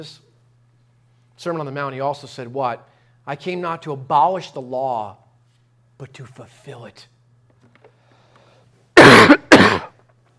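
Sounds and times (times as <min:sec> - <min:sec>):
speech: 0:00.0 - 0:00.3, 0:01.4 - 0:05.2, 0:06.0 - 0:07.1
person coughing with throat clearing: 0:09.0 - 0:10.0.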